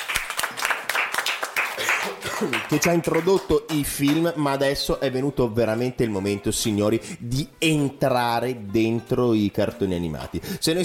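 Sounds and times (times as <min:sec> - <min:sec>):
small audience applause: 0:00.0 - 0:04.3
speech: 0:02.4 - 0:10.8.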